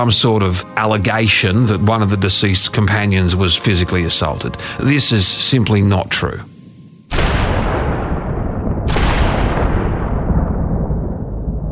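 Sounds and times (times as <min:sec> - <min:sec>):
speech: 0:00.0 - 0:06.5
.357 revolver gunshots: 0:07.1 - 0:10.6.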